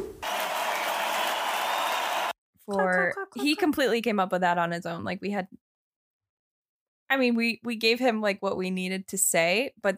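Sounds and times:
crowd applause with many hands clapping: 0:00.2 - 0:03.6
speech: 0:02.7 - 0:05.6, 0:07.1 - 0:09.9.

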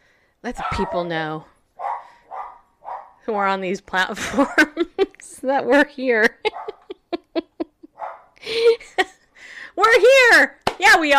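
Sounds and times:
speech: 0:00.4 - 0:01.5, 0:03.2 - 0:06.6, 0:09.8 - 0:11.1
dog barking: 0:00.5 - 0:01.1, 0:01.8 - 0:03.2, 0:06.5 - 0:06.9, 0:08.0 - 0:08.3.

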